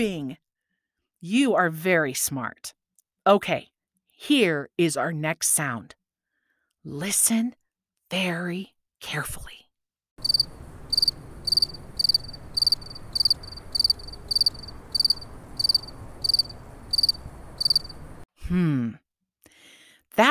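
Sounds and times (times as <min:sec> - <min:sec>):
speech: 0:00.0 - 0:00.4, 0:01.2 - 0:06.0, 0:06.8 - 0:09.6, 0:18.5 - 0:19.0
crickets chirping: 0:10.2 - 0:18.2.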